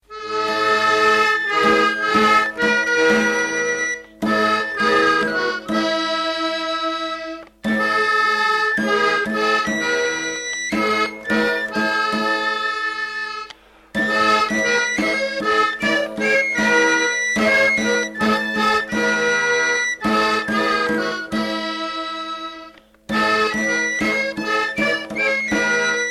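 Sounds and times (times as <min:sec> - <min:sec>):
accordion: 0:00.0 - 0:26.0.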